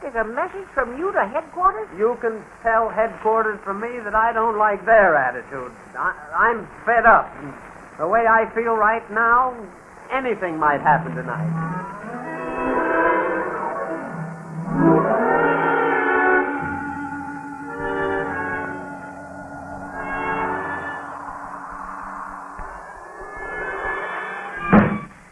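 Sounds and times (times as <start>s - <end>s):
speech: 0.1s - 12.1s
wavering moaning tones: 10.4s - 24.7s
door slamming: 24.6s - 25.1s.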